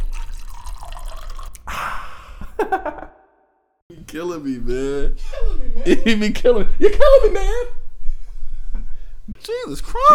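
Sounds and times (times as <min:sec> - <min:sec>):
drink pouring into a glass: 0:00.0 - 0:01.7
speech: 0:02.6 - 0:03.2, 0:04.1 - 0:07.8, 0:09.4 - 0:10.1.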